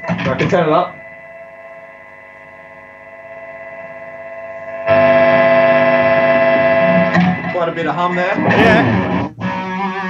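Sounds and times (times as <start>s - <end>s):
loud steady electrical hum: 0.0s - 9.4s
speech: 0.3s - 1.0s, 7.7s - 9.1s
warbling voice-like sounds: 8.3s - 9.0s.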